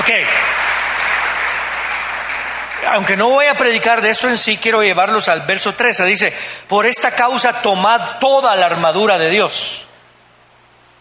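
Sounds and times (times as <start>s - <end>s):
large crowd applauding: 0.0s - 3.9s
speech: 0.1s - 0.6s, 2.8s - 9.9s.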